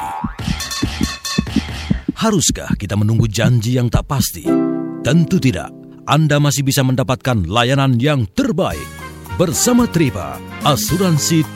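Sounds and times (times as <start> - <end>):
irregular heartbeat thumps: 0.0 - 4.4
speech: 2.2 - 11.5.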